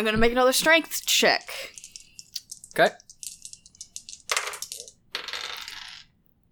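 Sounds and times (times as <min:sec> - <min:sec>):
speech: 0:00.0 - 0:01.8, 0:02.8 - 0:03.0
dice clattering across a hard table: 0:01.6 - 0:06.2.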